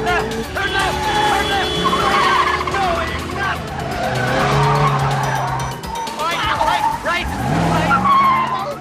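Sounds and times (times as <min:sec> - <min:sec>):
people talking: 0:00.0 - 0:03.7, 0:06.2 - 0:08.7
police squad car engine: 0:00.0 - 0:08.7
police squad car tires squealing and skidding while weaving in a pursuit: 0:00.0 - 0:08.7.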